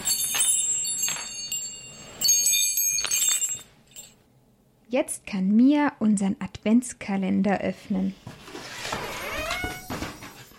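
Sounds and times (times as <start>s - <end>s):
small hand bell being shaken: 0.0s - 4.2s
speech: 4.9s - 8.4s.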